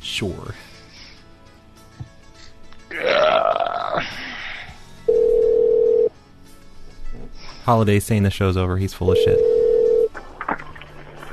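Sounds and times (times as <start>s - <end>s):
speech: 0.2s - 0.7s, 7.7s - 9.5s
long loud burp-like voiced sound: 2.9s - 4.2s
telephone line tone while call is transferred to a motel extension: 5.1s - 6.1s, 9.1s - 10.1s.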